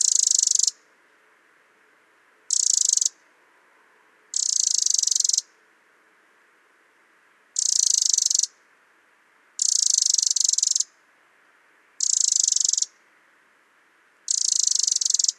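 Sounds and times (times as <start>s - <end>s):
Eurasian wren Troglodytes troglodytes churring rattles: 0.0s - 0.8s, 2.5s - 3.2s, 4.3s - 5.6s, 7.6s - 8.6s, 9.6s - 11.0s, 12.0s - 13.0s, 14.3s - 15.3s.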